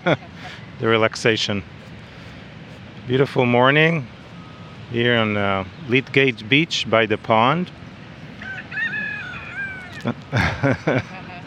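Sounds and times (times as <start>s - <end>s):
speech: 0.0s - 1.9s, 3.1s - 4.2s, 4.9s - 7.8s, 10.0s - 11.1s
steady outdoor hum: 0.0s - 11.4s
rooster crowing: 8.4s - 10.1s
laughter: 9.6s - 11.4s.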